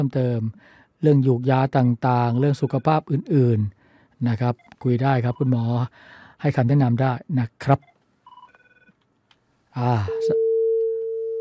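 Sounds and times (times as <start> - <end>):
speech: 0.0 - 7.9, 9.8 - 10.4
telephone line tone after a dropped call: 10.1 - 11.3.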